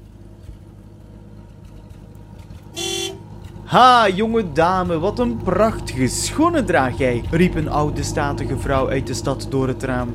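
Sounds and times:
old car engine idling: 0.0 - 10.1
old car horn honk: 2.7 - 3.2
speech: 3.7 - 10.1.

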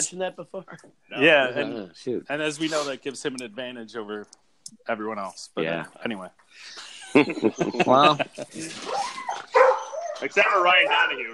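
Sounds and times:
speech: 0.0 - 9.2, 10.2 - 11.3
laughter: 6.6 - 8.9
dog barking: 9.5 - 11.2.

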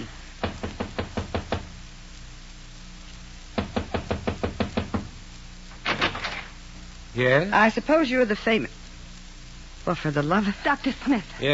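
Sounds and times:
sharp knocking on a wooden door: 0.4 - 1.7, 3.6 - 5.2
speech: 7.2 - 8.8, 9.9 - 11.5.

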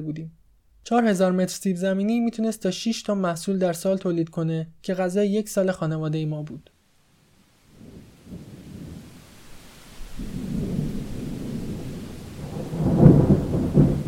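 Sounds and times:
speech: 0.0 - 6.7
heavy rain pouring: 7.6 - 14.0
deep thunder rumbling: 7.7 - 14.0.

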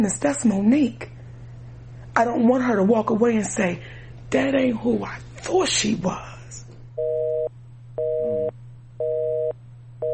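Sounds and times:
speech: 0.0 - 1.1, 2.2 - 6.3
faint low hum: 0.0 - 10.1
telephone busy signal after a call disconnects: 7.0 - 10.1.

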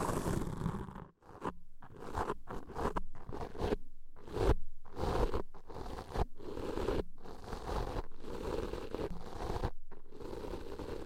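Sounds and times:
deep ear cleaning scratching and rubbing: 0.0 - 11.0.

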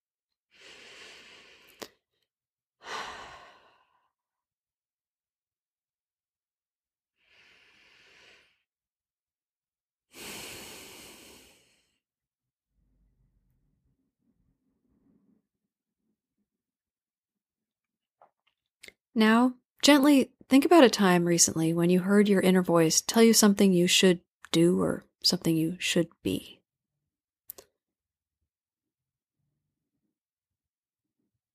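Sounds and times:
slow deep breaths during a guided relaxation exercise: 0.5 - 2.1, 2.8 - 4.3, 7.2 - 8.7, 10.1 - 12.1
speech: 19.2 - 26.6.

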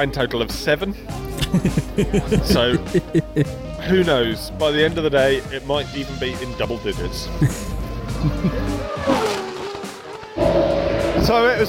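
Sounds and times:
speech: 0.0 - 9.2, 11.2 - 11.6
crowd noise: 1.2 - 3.5
laughter: 1.2 - 3.5, 7.4 - 8.9
Formula 1 cars racing at the British Grand Prix: 7.7 - 11.6.

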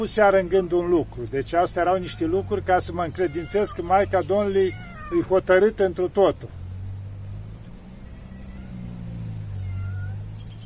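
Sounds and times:
speech: 0.0 - 6.6
cat meowing plaintively: 1.8 - 5.4, 7.9 - 10.2.

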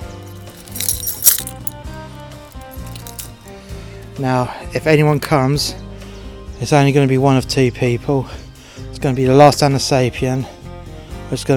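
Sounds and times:
keys jangling: 0.0 - 3.6
music: 0.0 - 11.5
speech: 4.2 - 5.8, 6.6 - 8.4, 9.0 - 10.6, 11.3 - 11.5.

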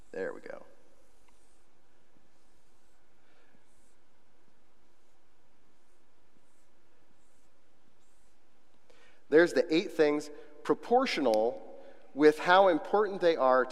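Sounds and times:
steady low hiss: 0.0 - 13.7
speech: 0.2 - 0.7, 9.3 - 13.7
pen scratching across paper drawing a pie chart: 1.0 - 8.7.

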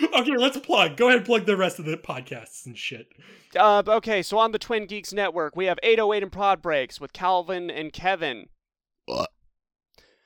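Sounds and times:
speech: 0.0 - 9.4
person burping: 9.1 - 9.4.

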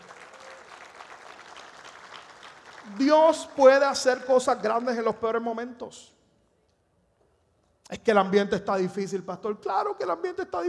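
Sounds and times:
audience applauding: 0.0 - 3.9
speech: 2.8 - 6.2, 8.0 - 10.6.

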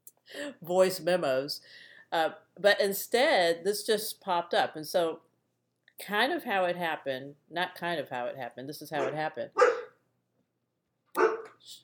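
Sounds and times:
speech: 0.4 - 5.2, 6.0 - 9.7, 11.6 - 11.8
dog barking: 9.0 - 10.0, 11.2 - 11.6.

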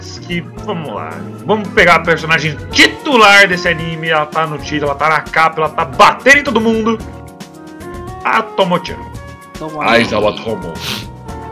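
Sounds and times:
speech: 0.3 - 7.2, 8.2 - 11.0
person sneezing: 10.8 - 11.1.

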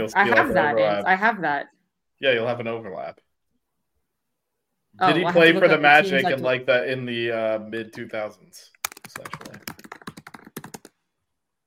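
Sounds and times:
speech: 0.0 - 3.3, 5.0 - 9.6
rapid hard computer keyboard typing: 8.8 - 11.0.

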